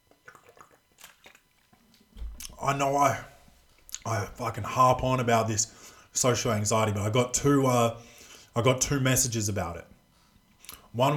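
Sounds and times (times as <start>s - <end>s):
person sipping a drink: 0.1s - 2.6s
speech: 2.6s - 3.3s, 4.0s - 9.9s, 10.9s - 11.1s.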